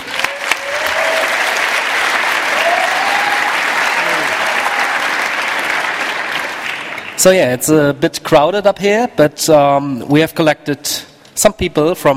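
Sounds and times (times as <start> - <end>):
audience applause: 0.0 - 7.2
speech: 7.2 - 12.1.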